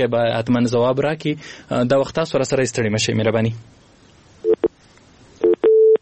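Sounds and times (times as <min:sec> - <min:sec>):
speech: 0:00.0 - 0:03.8
telephone line disconnected tone beeps after a call is cut off: 0:05.4 - 0:06.0.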